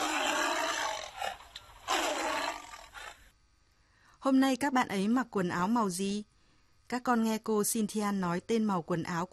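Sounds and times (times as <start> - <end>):
tiger roaring: 0.0 - 3.2
speech: 4.2 - 6.3, 6.9 - 9.3.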